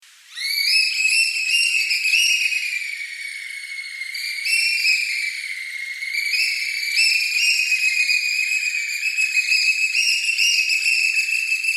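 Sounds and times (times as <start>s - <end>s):
oystercatcher shrill whistles: 0.3s - 11.7s.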